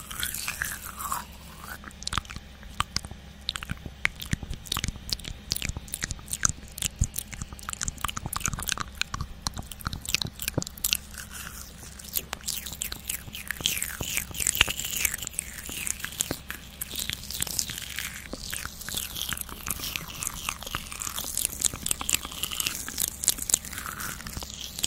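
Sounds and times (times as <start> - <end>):
low steady hum: 0.0 - 24.8
mouth sounds with a spoolie brush: 0.0 - 24.8
nibbling with crunchy bites and chewing bursts: 0.0 - 24.8.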